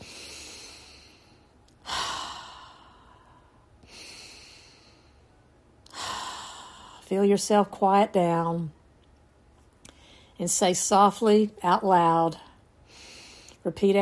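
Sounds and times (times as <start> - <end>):
slow deep breaths taken to settle into quiet: 0.0 - 7.0
speech: 7.1 - 8.8, 10.4 - 12.5, 13.6 - 14.0.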